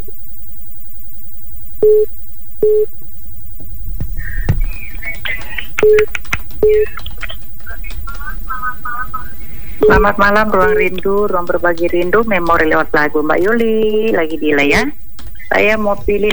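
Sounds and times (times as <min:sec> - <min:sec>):
speech: 0:01.8 - 0:02.9, 0:09.9 - 0:16.3
telephone busy tone after a call is cut off: 0:01.8 - 0:02.9, 0:05.3 - 0:06.9, 0:09.8 - 0:11.0
laughter: 0:04.2 - 0:12.7, 0:15.2 - 0:16.3.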